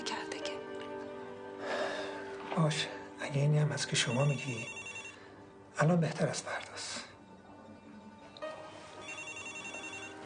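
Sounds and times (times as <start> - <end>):
speech: 2.6 - 4.8, 5.8 - 7.0
telephone ringing with an electronic ringtone: 4.0 - 5.4, 9.0 - 10.2.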